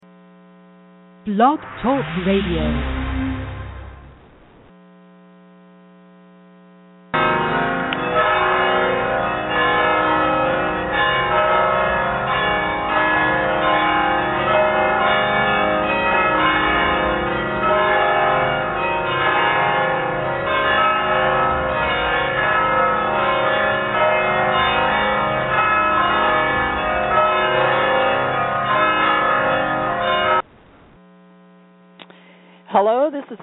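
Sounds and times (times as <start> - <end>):
low hum: 0.0 - 7.1
speech: 1.2 - 3.0
mission church bells ringing: 7.2 - 30.5.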